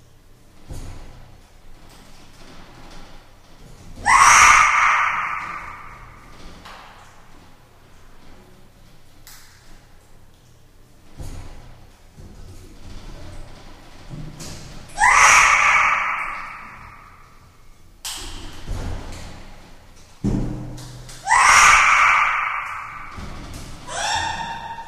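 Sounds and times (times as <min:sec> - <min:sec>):
knocks and clanks of a chimpanzee climbing a cage: 0:00.6 - 0:07.6, 0:11.1 - 0:17.2, 0:18.0 - 0:24.8
chimpanzee screaming while climbing a cage in a large space: 0:04.0 - 0:06.2, 0:14.9 - 0:17.2, 0:21.2 - 0:24.8.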